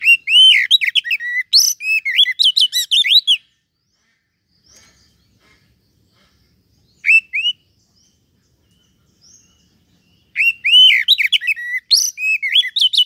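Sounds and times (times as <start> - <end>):
Oriental magpie-robin singing varied whistled phrases: 0.0 - 3.6, 6.8 - 7.8, 8.8 - 13.0.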